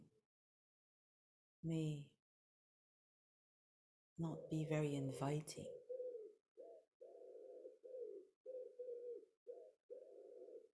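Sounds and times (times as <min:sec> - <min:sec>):
speech: 0:01.6 - 0:02.2, 0:04.2 - 0:05.8
pigeon or dove cooing: 0:04.3 - 0:04.8, 0:05.7 - 0:10.7.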